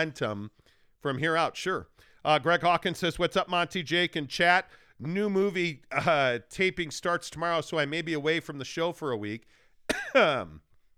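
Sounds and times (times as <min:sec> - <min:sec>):
speech: 0:00.0 - 0:10.6
person coughing: 0:09.9 - 0:10.6
voiced throat-clearing rasp: 0:09.9 - 0:10.6.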